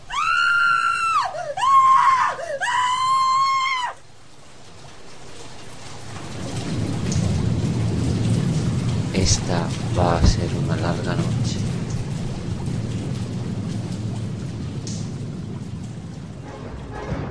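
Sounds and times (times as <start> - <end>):
woman screaming inside a house: 0.0 - 4.0
steady rain-like noise: 0.0 - 17.3
speech: 9.3 - 11.3.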